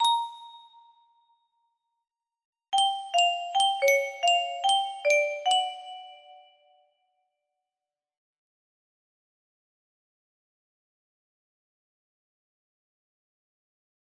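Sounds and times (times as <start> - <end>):
music box melody: 0.0 - 1.0, 2.8 - 6.6.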